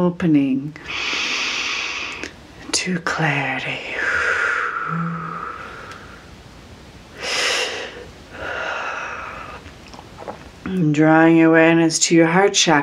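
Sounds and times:
speech: 0.0 - 1.3, 2.8 - 4.2, 4.9 - 5.3, 10.7 - 12.8
deep breathing during a guided healing meditation: 0.8 - 2.3, 3.8 - 6.4, 7.1 - 9.7.

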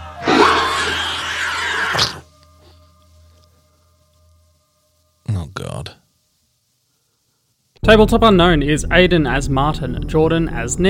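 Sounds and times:
long harsh distant scream: 0.0 - 2.3
speech: 7.9 - 10.8.

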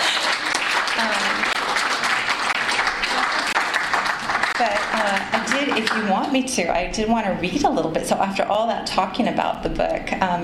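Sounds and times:
audience applause after a speaker's formal remarks about a book: 0.0 - 6.4
speech: 4.6 - 10.4.

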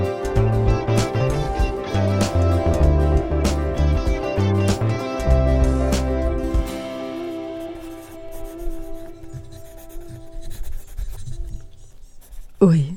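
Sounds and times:
sustained tones: 0.1 - 10.4
pen scratching on notebook paper in a garden: 7.2 - 12.8.

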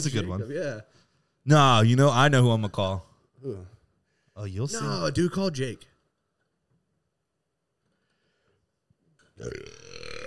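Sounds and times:
speech: 0.0 - 3.8, 4.4 - 5.9, 9.4 - 9.8
loud deep rumbling burp: 9.4 - 10.2.

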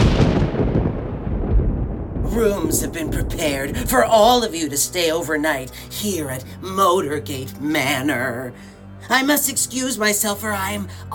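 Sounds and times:
thunder from a raging storm: 0.0 - 5.4
speech: 2.3 - 11.1.

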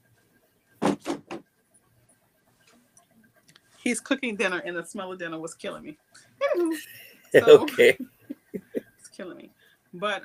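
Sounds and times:
door pushed shut, swinging and latching: 0.8 - 1.4
speech: 3.9 - 6.0, 6.6 - 8.2, 10.0 - 10.2
laughter: 7.4 - 8.8.

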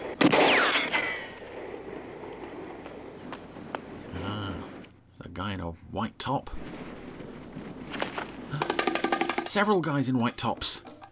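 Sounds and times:
gunshot in a TV drama: 0.0 - 1.8, 6.6 - 9.4
speech: 5.4 - 6.7, 9.5 - 10.9.

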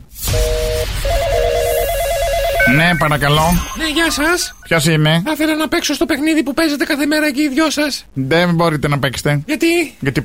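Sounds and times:
telephone ringing in electronic tones: 1.0 - 4.7
speech: 2.7 - 10.2.

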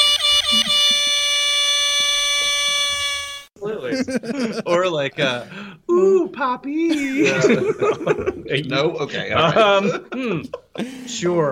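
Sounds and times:
loud brassy air horn blasts: 0.0 - 3.5
laughter: 3.7 - 6.1, 6.8 - 11.1
speech: 4.0 - 11.4.

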